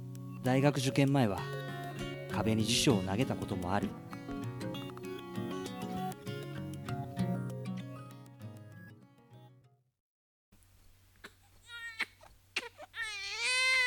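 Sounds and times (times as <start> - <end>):
gentle music: 0.0 - 9.5
speech: 0.4 - 1.6, 2.3 - 4.1
baby crying on a crowded bus: 11.2 - 13.8.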